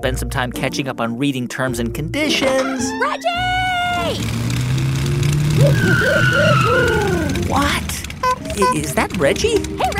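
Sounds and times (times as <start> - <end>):
speech: 0.0 - 4.6, 5.6 - 8.0, 8.6 - 9.9
pickup truck engine humming as it drives up: 3.4 - 9.9
warbling tones: 3.5 - 8.6.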